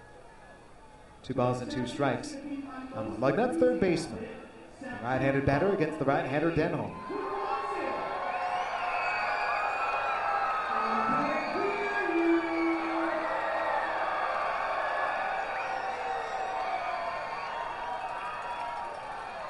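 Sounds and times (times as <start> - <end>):
speech: 1.3 - 7.1
ballpark crowd cheering at a baseball game: 5.6 - 19.4.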